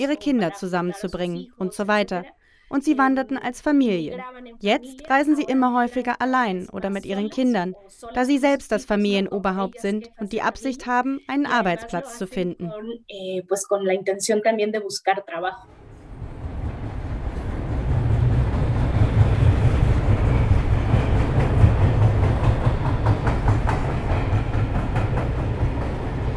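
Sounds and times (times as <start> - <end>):
speech: 0.0 - 15.8
freight train rolling past: 15.7 - 26.3
freight train wheels clattering on the rails: 16.2 - 26.3.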